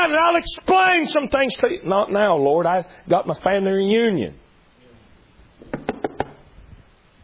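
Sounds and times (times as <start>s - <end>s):
speech: 0.0s - 4.4s
knocking on a door: 5.7s - 6.4s.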